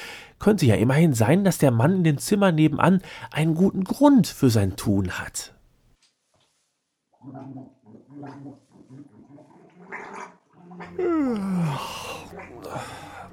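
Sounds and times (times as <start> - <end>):
speech: 0.4 - 5.6, 7.2 - 8.6, 10.8 - 13.1
man gargling and spluttering: 10.8 - 13.3
man spitting: 10.9 - 13.3.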